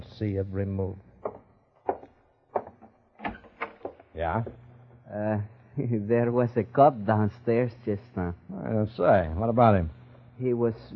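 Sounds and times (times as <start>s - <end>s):
speech: 0.2s - 1.1s, 4.2s - 10.9s
door latch and bolt clunks as a door is opened: 1.2s - 4.1s.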